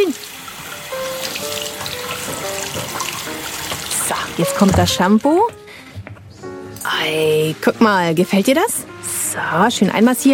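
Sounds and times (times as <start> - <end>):
tap water running into a washbasin: 0.0 - 5.3
speech: 4.4 - 5.6, 7.0 - 10.3.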